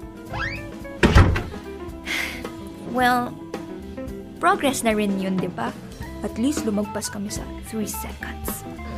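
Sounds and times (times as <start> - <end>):
brief rising squeak: 0.3 - 0.7
door shutting with a dull heavy thud: 0.3 - 1.6
speech: 3.0 - 3.4, 4.4 - 8.8.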